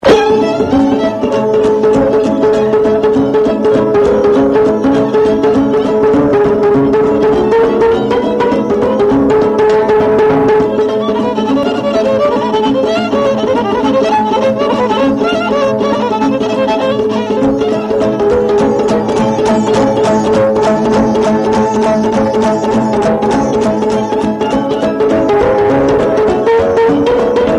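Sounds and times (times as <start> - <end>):
taraf band playing: 0.0 - 27.5.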